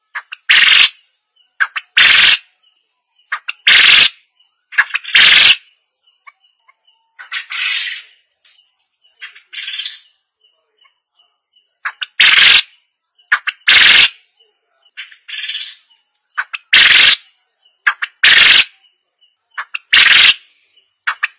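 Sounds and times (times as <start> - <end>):
quail call: 0.1 - 1.0, 1.6 - 2.5, 3.3 - 6.4, 7.2 - 8.2, 9.2 - 10.1, 11.8 - 12.7, 13.3 - 14.2, 15.0 - 17.2, 17.8 - 18.8, 19.6 - 21.3.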